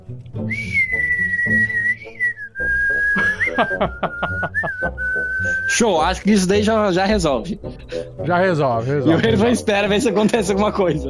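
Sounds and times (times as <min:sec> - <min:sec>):
sustained wavering whistle sound effect: 0:00.5 - 0:05.8
laughter: 0:03.0 - 0:05.3, 0:08.8 - 0:11.0
speech: 0:03.6 - 0:04.4, 0:05.7 - 0:11.0.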